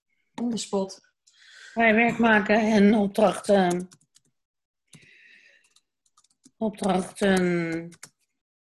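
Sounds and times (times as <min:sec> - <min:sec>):
speech: 0:00.4 - 0:01.1, 0:01.8 - 0:04.0, 0:06.6 - 0:08.1
typing on a computer keyboard: 0:03.2 - 0:08.4.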